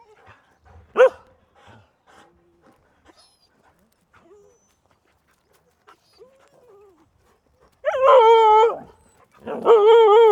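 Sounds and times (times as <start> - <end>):
Siberian Husky howling: 7.8 - 10.2.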